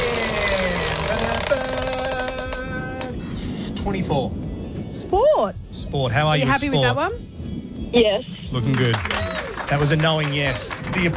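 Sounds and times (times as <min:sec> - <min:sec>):
game show prize wheel spinning with clicking ticks: 0:00.0 - 0:02.6
dense noisy background: 0:00.0 - 0:11.1
speech: 0:03.9 - 0:04.5, 0:05.1 - 0:07.3, 0:07.9 - 0:11.1.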